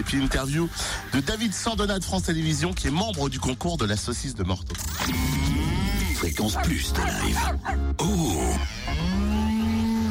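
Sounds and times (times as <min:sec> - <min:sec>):
speech: 0:00.0 - 0:09.5
cow mooing at an agricultural show: 0:07.4 - 0:09.5.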